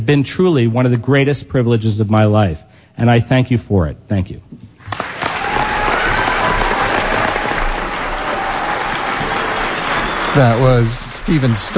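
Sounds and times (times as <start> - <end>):
speech: 0.0 - 5.0, 10.3 - 11.7
large crowd applauding in a reverberant school auditorium: 4.8 - 11.7.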